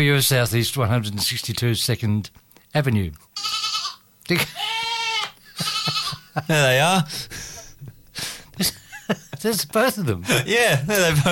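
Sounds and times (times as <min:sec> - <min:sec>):
speech: 0:00.0 - 0:03.6, 0:04.3 - 0:04.7, 0:05.6 - 0:07.9, 0:08.6 - 0:11.3
loose goats bleating at a bus station: 0:03.4 - 0:06.4
laughter: 0:05.4 - 0:11.3.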